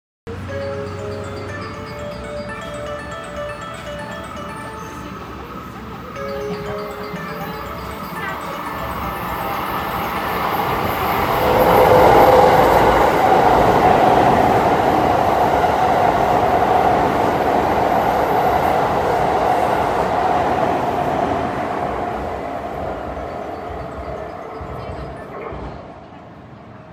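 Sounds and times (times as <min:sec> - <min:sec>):
train passing on the Osaka Loop Line: 0:00.3 - 0:26.9.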